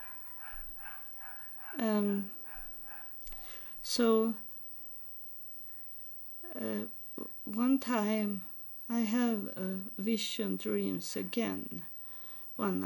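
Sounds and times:
dogs barking outside: 0.0 - 3.2
speech: 1.8 - 2.4, 3.8 - 4.4, 6.6 - 11.9, 12.6 - 12.8.

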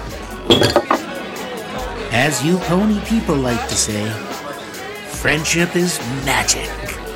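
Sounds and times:
faint murmur of voices: 0.0 - 7.1
glasses clinking together in a toast: 0.4 - 1.2
speech: 2.1 - 4.3, 5.2 - 7.0.

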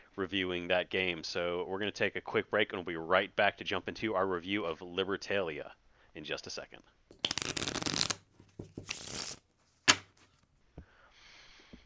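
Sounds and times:
speech: 0.2 - 7.2
deck of cards being shuffled: 7.1 - 10.5.

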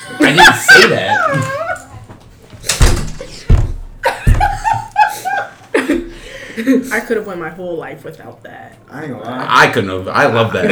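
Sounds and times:
laughter: 0.0 - 2.0, 3.1 - 7.1
speech: 0.2 - 1.6, 6.7 - 10.7
door being forced shut with heavy thuds: 2.5 - 4.9.

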